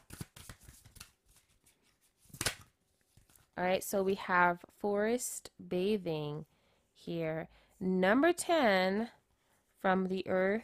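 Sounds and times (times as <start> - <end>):
oracle card being drawn from a deck, papery rustles and card snaps: 0.0 - 3.5
speech: 3.6 - 9.2, 9.8 - 10.6.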